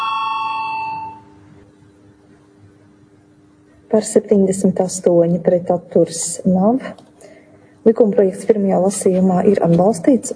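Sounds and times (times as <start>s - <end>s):
electronic chime bell calling a parliamentary vote: 0.0s - 1.4s
speech: 3.9s - 7.1s, 7.8s - 10.3s.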